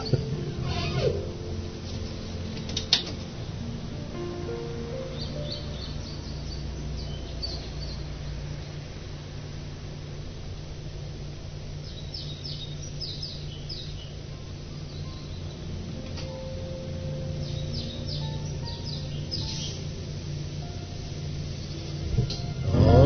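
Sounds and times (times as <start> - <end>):
low indoor hum: 0.0 - 23.0
blackbird singing faintly outside, heard through a window: 5.0 - 8.1, 11.8 - 15.7, 16.3 - 19.9.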